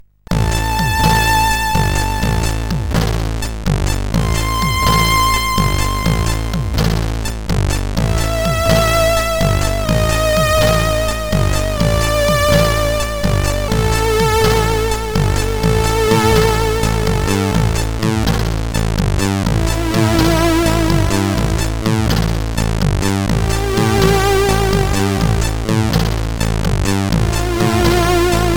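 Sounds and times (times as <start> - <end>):
CSG8580R5 SID chip synthesizer with delay: 0.3 - 28.5.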